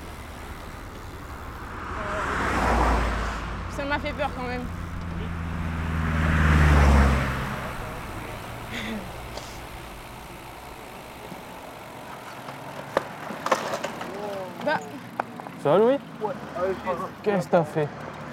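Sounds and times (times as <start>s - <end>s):
steady low rumble of traffic and engines: 0.0s - 18.3s
car sweeping past: 1.5s - 9.7s
speech: 4.0s - 4.8s, 15.7s - 16.1s, 16.7s - 18.0s.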